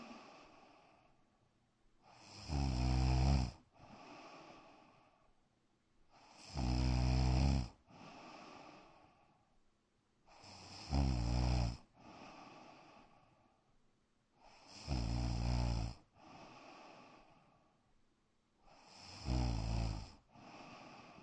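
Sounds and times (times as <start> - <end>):
black dog snoring in a bedroom: 2.1 - 4.5, 6.2 - 8.7, 10.3 - 12.8, 14.4 - 17.1, 18.7 - 21.2.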